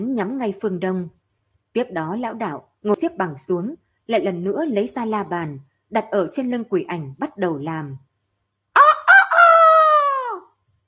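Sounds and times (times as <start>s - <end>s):
speech: 0.2s - 1.2s, 1.8s - 8.1s
rooster crowing: 8.8s - 10.5s.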